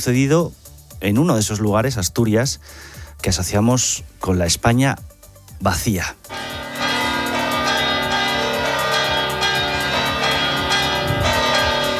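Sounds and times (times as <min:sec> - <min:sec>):
speech: 0:00.0 - 0:06.6
bells of the Cathedral of Badajoz Spain pealing: 0:06.3 - 0:11.9.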